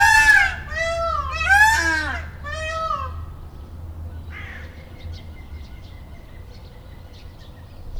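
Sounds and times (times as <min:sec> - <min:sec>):
peacock calling in Debrecen zoo: 0:00.0 - 0:03.6.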